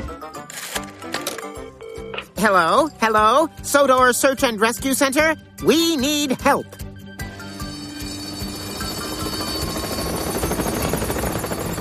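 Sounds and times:
speech: 0:02.4 - 0:06.8
helicopter flying overhead: 0:07.2 - 0:11.7.

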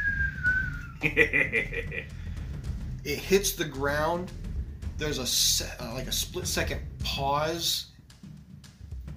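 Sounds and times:
person whistling a descending tone imitating a falling projectile: 0:00.0 - 0:01.0
short chuckling vocal bursts: 0:01.0 - 0:02.0
speech: 0:01.0 - 0:02.2, 0:03.0 - 0:04.4, 0:05.0 - 0:07.9.

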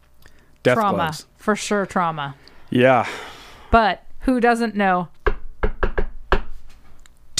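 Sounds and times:
speech: 0:00.6 - 0:05.2
rhythmic knock on a door: 0:05.2 - 0:06.6.

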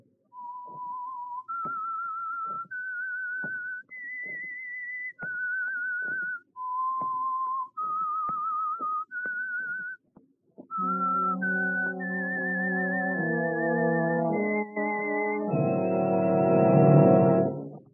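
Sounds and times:
lone clear whistled melody: 0:00.3 - 0:10.0, 0:10.7 - 0:17.9
swelling orchestral chords: 0:10.9 - 0:17.8.

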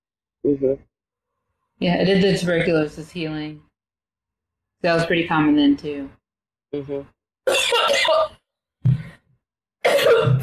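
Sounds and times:
speech: 0:00.4 - 0:00.9, 0:01.8 - 0:03.7, 0:04.8 - 0:08.4, 0:09.8 - 0:10.4
person coughing with a dry unproductive cough: 0:07.5 - 0:08.3, 0:09.8 - 0:10.4.

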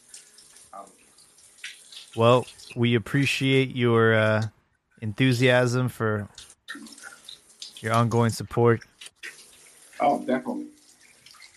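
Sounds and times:
shower water running: 0:00.0 - 0:03.6, 0:06.3 - 0:11.5
speech: 0:00.7 - 0:01.0, 0:02.1 - 0:07.0, 0:07.8 - 0:08.9, 0:10.0 - 0:10.7.

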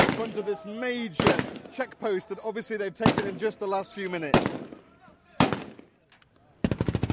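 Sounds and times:
gunfire aimed at green flag bunting on a lamppost at a captured checkpoint: 0:00.0 - 0:00.5, 0:01.2 - 0:01.8, 0:03.0 - 0:03.5, 0:04.3 - 0:04.8, 0:05.4 - 0:05.9, 0:06.6 - 0:07.1
speech: 0:00.2 - 0:04.8.

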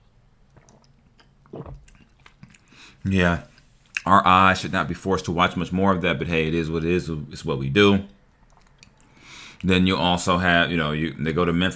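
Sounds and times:
person sipping water with wet mouth clicks and a slurp: 0:00.5 - 0:04.1, 0:08.5 - 0:09.7
speech: 0:03.0 - 0:08.2, 0:09.6 - 0:11.7.

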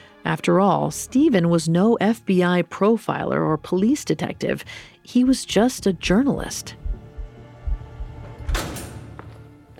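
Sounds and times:
speech: 0:00.2 - 0:06.8
low thuds: 0:05.9 - 0:09.2
heavy security door unlocking with a metallic clank: 0:08.2 - 0:09.4.

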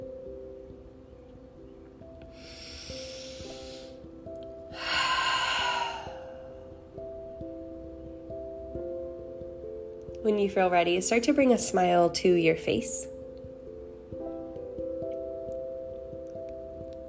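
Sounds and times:
soft sustained tonal music: 0:00.0 - 0:17.0
loud exhaled breaths during a relaxation exercise: 0:02.4 - 0:04.0, 0:04.7 - 0:06.4
speech: 0:10.2 - 0:13.1.

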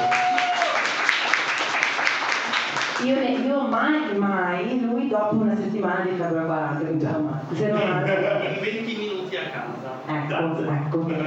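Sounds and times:
room full of people applauding: 0:00.0 - 0:03.1
speech: 0:03.0 - 0:11.2
laughter: 0:07.5 - 0:09.2, 0:11.0 - 0:11.2.

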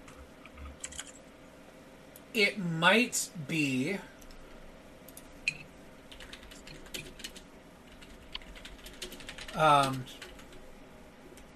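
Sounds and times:
faint hum: 0:00.0 - 0:11.5
quiet steady typing on a keyboard: 0:00.1 - 0:01.2, 0:06.1 - 0:10.6
speech: 0:02.3 - 0:04.1, 0:09.6 - 0:10.2.

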